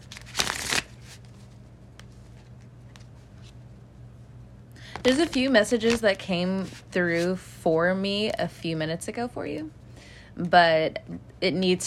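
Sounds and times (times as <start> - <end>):
riffle of playing cards being shuffled: 0.0 - 3.6, 4.9 - 7.4
faint low hum: 0.0 - 11.8
speech: 5.0 - 9.8, 10.4 - 11.8.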